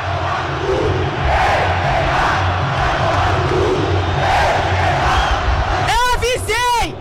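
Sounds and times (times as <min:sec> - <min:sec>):
football fans chanting in a stadium: 0:00.0 - 0:06.0.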